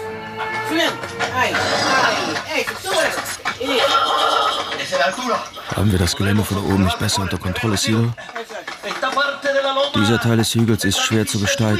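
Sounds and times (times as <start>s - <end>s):
speech: 0.7s - 11.7s
several horses neighing and whinnying: 1.4s - 2.5s, 3.6s - 4.9s.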